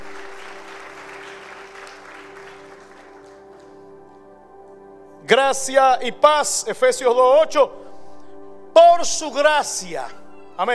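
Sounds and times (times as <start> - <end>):
audience clapping loudly: 0.0 - 4.2
speech: 5.3 - 7.8, 9.0 - 10.7.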